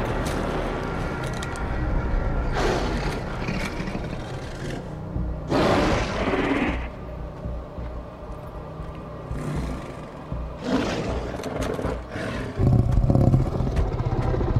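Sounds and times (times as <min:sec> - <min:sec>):
steady low rumbling background: 0:00.0 - 0:14.5
zombie tiger roaring: 0:02.5 - 0:04.9, 0:05.5 - 0:06.9, 0:09.3 - 0:14.5.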